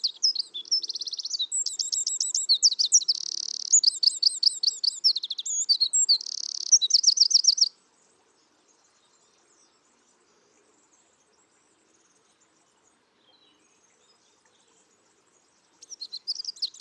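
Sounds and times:
Eurasian wren Troglodytes troglodytes song with rattling trill: 0.0 - 7.7, 15.8 - 16.7.

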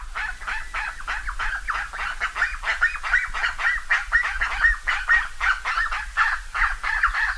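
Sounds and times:
chorus of nasal honking bird calls: 0.0 - 7.3.

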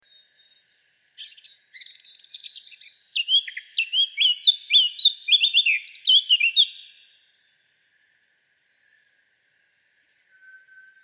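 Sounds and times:
Eurasian blackcap Sylvia atricapilla song: 1.2 - 7.0, 8.7 - 11.0.

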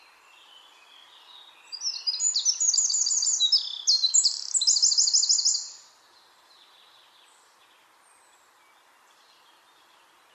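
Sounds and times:
Eurasian wren Troglodytes troglodytes singing: 0.4 - 5.9.

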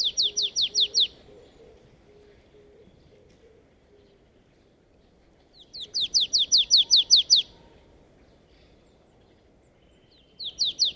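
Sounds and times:
marsh tit Poecile palustris calling: 0.0 - 4.3, 5.4 - 7.6, 9.8 - 10.9.

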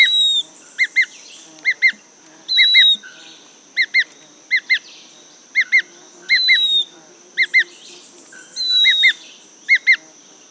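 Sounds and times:
bird giving crisp double chips and short falling whistles: 0.0 - 3.1, 5.6 - 7.8, 8.4 - 10.0.

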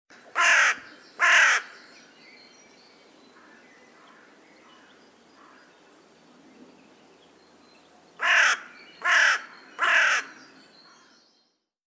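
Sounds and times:
carrion crow Corvus corone cawing: 0.4 - 1.8, 8.2 - 11.2.

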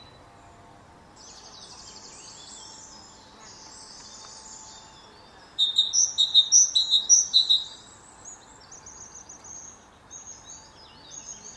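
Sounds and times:
Great tit repeating bright three-note phrases: 5.2 - 7.8.

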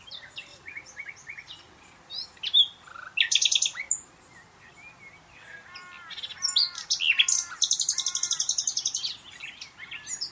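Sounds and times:
Common nightingale song: 0.0 - 10.2.

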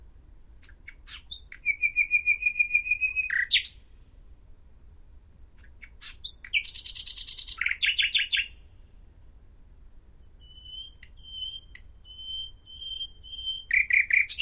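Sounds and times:
common nightingale singing, Luscinia megarhynchos: 0.6 - 4.0, 5.6 - 9.0, 10.2 - 14.4.

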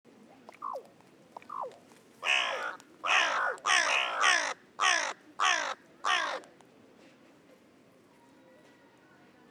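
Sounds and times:
carrion crow Corvus corone cawing: 2.2 - 6.4.

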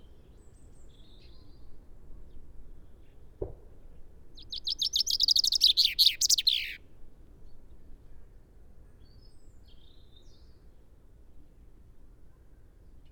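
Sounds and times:
common chaffinch Fringilla coelebs song: 4.4 - 6.8.

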